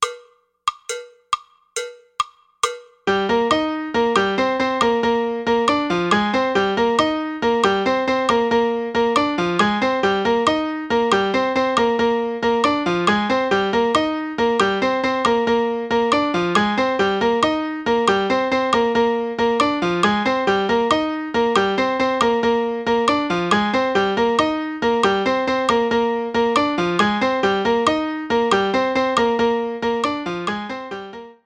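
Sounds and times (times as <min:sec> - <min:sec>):
fast son montuno music: 0:00.0 - 0:31.4.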